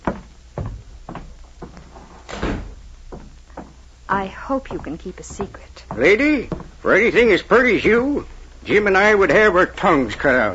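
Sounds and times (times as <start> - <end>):
door being handled and shut with thumps and clunks: 0.0 - 3.8, 4.7 - 6.9
heavy door bang: 2.2 - 2.9
speech: 4.1 - 10.5.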